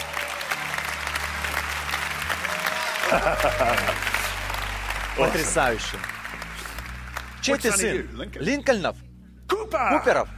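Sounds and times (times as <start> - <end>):
applause from a large audience: 0.0 - 7.8
laughter: 2.8 - 4.5
speech: 3.1 - 4.2, 5.2 - 6.1, 7.4 - 9.0, 9.7 - 10.3.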